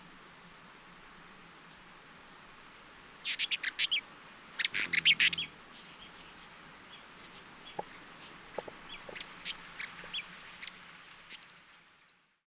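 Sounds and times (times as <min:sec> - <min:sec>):
Hyacinth visorbearer calls with sharp very high chips and rapid high ticks: 0:03.2 - 0:11.5.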